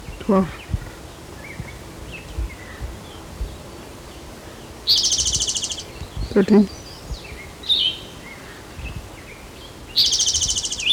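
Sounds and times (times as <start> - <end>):
woodpecker rapid rattling series of high calls: 0.0 - 8.7
woodpecker calling: 0.0 - 10.9
speech: 0.3 - 0.7, 6.4 - 6.8.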